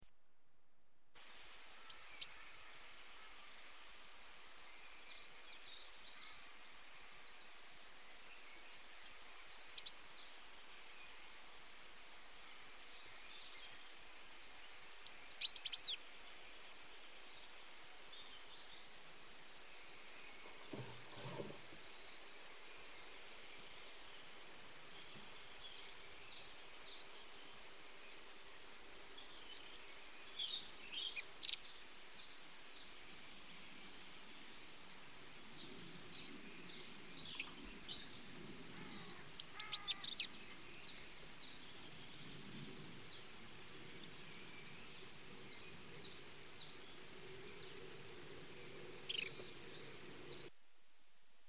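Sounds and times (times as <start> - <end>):
goldcrest singing: 1.2 - 50.6.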